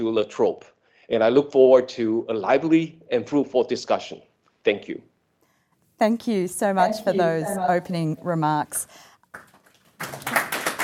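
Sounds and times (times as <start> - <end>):
speech: 0.0 - 5.1, 6.0 - 9.4
audience in a room applauding after opening remarks at a discussion event: 9.2 - 10.8.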